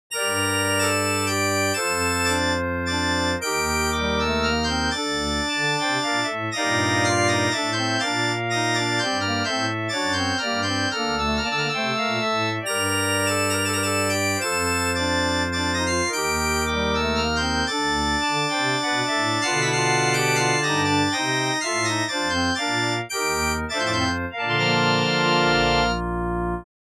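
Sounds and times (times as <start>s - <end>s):
church organ minuet in a minor key, dry: 0.1s - 26.7s.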